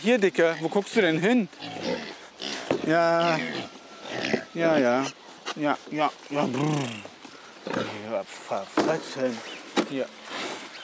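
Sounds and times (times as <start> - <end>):
speech: 0.0 - 2.2, 2.8 - 10.5
Swabian-Hall pigs grunting and squealing at feeding time: 0.3 - 5.2, 6.3 - 8.2
scuffling and rustling of pigs at feeding: 1.6 - 10.8.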